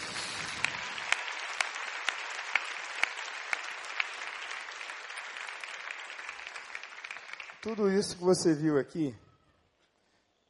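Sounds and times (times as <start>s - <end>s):
audience applause for volunteers: 0.0s - 8.4s
speech: 7.6s - 9.2s.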